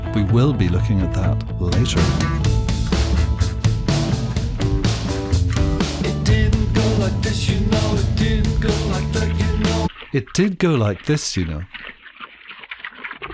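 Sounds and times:
thick sustained rock guitars: 0:00.0 - 0:09.9
speech: 0:00.2 - 0:02.6, 0:06.3 - 0:11.9
loud dense rock song with full band: 0:01.4 - 0:09.9
steady pounding rock drums: 0:01.8 - 0:09.9.

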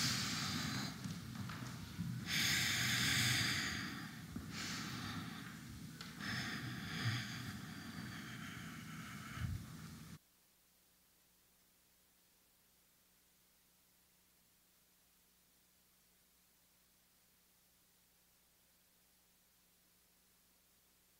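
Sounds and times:
deep breathing in during a guided pause: 0:00.0 - 0:01.6, 0:02.2 - 0:10.2
steady low hum: 0:00.0 - 0:21.1.

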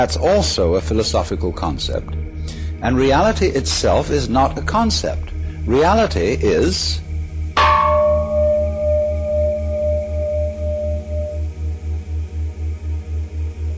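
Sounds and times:
speech: 0:00.0 - 0:07.0
pulsing low hum: 0:01.4 - 0:13.7
gong struck and ringing: 0:07.6 - 0:11.6.

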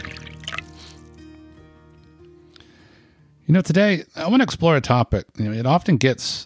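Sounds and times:
liquid pouring into a glass: 0:00.0 - 0:01.3
speech: 0:03.5 - 0:06.4.

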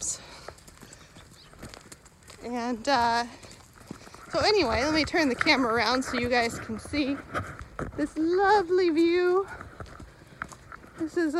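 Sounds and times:
faint outdoor noise: 0:00.0 - 0:11.3
horses' hooves clip-clopping on firm ground: 0:00.0 - 0:11.3
speech: 0:02.4 - 0:03.5, 0:04.3 - 0:09.7, 0:11.0 - 0:11.3.

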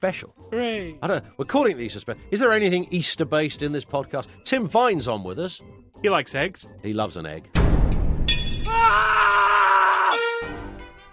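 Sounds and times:
speech: 0:00.0 - 0:07.6, 0:08.8 - 0:10.3
loud high-pitched scream breaking into a wavering cry: 0:08.7 - 0:10.3.

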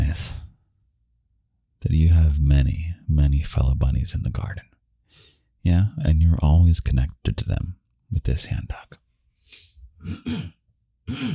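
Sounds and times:
speech: 0:01.8 - 0:11.3
soft breathy exhale: 0:05.1 - 0:05.5
person coughing into the microphone: 0:10.0 - 0:11.3.

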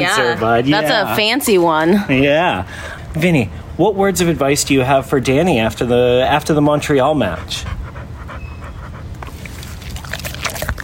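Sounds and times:
speech: 0:00.0 - 0:07.8
dog panting: 0:06.4 - 0:10.8.

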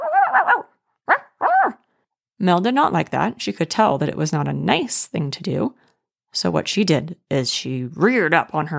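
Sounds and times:
voice imitating a dog growling: 0:00.0 - 0:01.8
speech: 0:00.4 - 0:00.8, 0:02.4 - 0:08.7.

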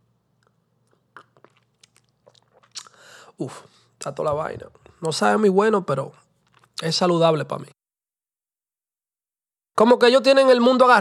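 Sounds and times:
swallowing: 0:00.4 - 0:03.2
person sipping tea: 0:00.4 - 0:04.1, 0:06.2 - 0:06.8
short airy slurp: 0:00.9 - 0:03.0
breathy exhale: 0:02.9 - 0:03.9
speech: 0:03.4 - 0:06.2, 0:06.8 - 0:07.8, 0:09.8 - 0:11.0.

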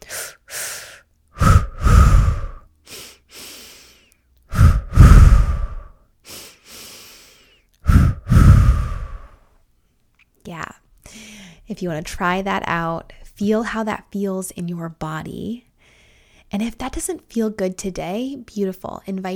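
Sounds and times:
long loud breathy mouth exhales during breathwork: 0:00.0 - 0:09.4
quick forceful nose inhales during breathwork: 0:00.0 - 0:09.4
speech: 0:11.7 - 0:15.7, 0:16.5 - 0:19.3.

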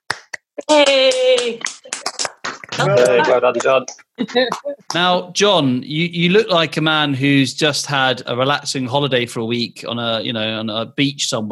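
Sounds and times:
people clapping over a video call: 0:00.0 - 0:05.0
person cheering: 0:00.6 - 0:01.6, 0:02.8 - 0:03.8
speech: 0:00.6 - 0:01.8, 0:02.8 - 0:11.5.

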